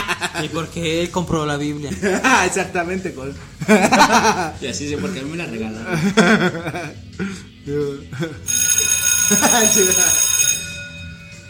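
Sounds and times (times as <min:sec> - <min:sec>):
laughter: 0:00.0 - 0:00.7, 0:01.8 - 0:08.5, 0:09.2 - 0:10.1
speech: 0:00.4 - 0:08.7, 0:09.3 - 0:10.3
closing bell ringing: 0:08.5 - 0:11.4.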